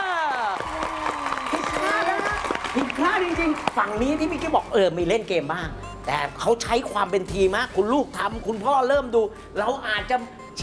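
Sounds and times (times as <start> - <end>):
small group clapping: 0.0 - 4.6
people cheering with excited raised voices: 0.0 - 4.8
speech: 3.0 - 10.6.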